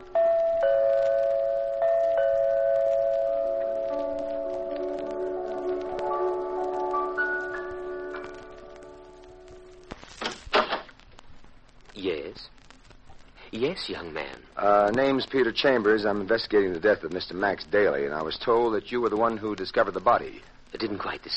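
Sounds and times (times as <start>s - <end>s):
doorbell ringing: 0.0s - 9.4s
sustained piano-like tones: 0.0s - 10.0s
speech: 13.8s - 21.3s.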